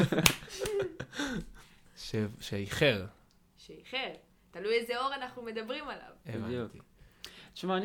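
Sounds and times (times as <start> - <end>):
speech: 0.0 - 0.4, 2.1 - 6.9, 7.6 - 7.8
sharp hand claps: 0.0 - 0.9.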